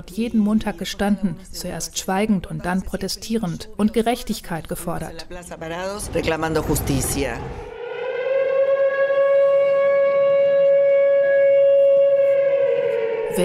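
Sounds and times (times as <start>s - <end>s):
speech: 0.0s - 7.7s
shrill steady memorial siren tone: 7.4s - 13.4s.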